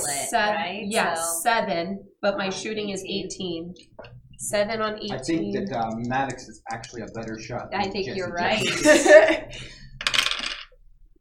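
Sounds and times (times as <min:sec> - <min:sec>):
speech: 0:00.3 - 0:10.1
laughter: 0:08.0 - 0:09.8
dice clattering across a hard table surface in a tabletop game: 0:10.0 - 0:10.8.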